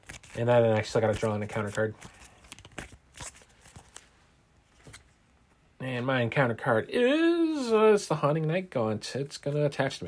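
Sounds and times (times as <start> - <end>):
playing cards being shuffled back into a deck: 0.0 - 4.1
speech: 0.4 - 2.2, 6.0 - 10.0.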